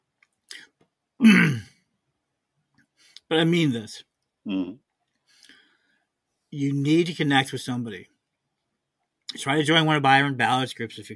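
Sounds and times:
speech: 1.2s - 1.7s, 3.3s - 4.8s, 6.5s - 8.1s, 9.4s - 11.1s
person coughing: 1.2s - 1.8s.

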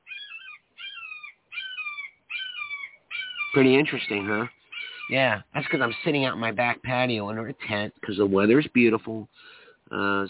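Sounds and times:
crow cawing outdoors by a back patio in breezy weather: 0.0s - 5.2s
speech: 3.5s - 10.2s.

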